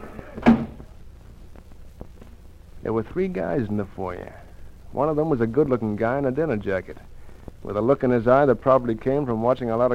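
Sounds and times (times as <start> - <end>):
low hum: 0.0 - 9.9
thump of brownstone gambling house front door: 0.4 - 0.9
speech: 2.8 - 9.9.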